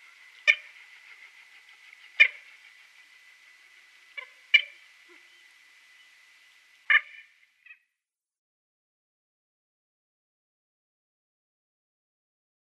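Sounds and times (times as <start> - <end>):
red-knobbed coot sharp clipped calls: 0.0 - 3.0, 4.1 - 5.4, 6.9 - 7.8.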